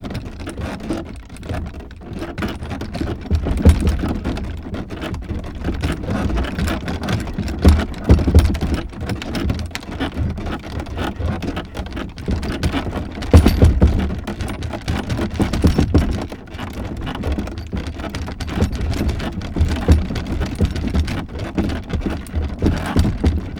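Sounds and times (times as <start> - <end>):
carriage rolling: 2.5 - 23.5.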